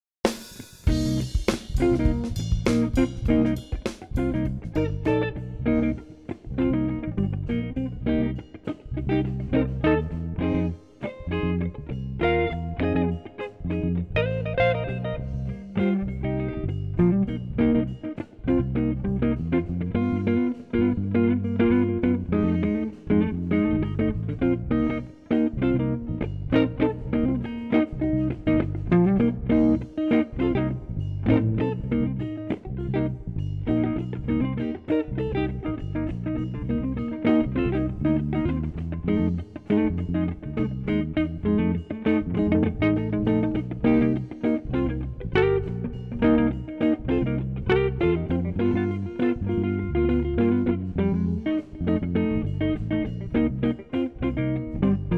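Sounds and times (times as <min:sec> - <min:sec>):
funky blues music without drums: 0:00.2 - 0:55.1.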